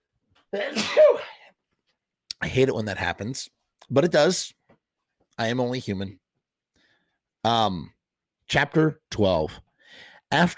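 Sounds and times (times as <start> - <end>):
speech: 0.5 - 1.3, 2.6 - 4.6, 5.4 - 6.2, 7.4 - 10.5
sharp sneeze: 0.6 - 1.4.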